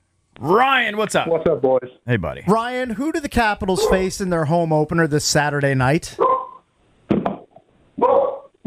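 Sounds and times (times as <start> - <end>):
speech: 0.4 - 6.4
dog barking and whining: 3.8 - 4.0, 6.2 - 6.6, 8.0 - 8.5.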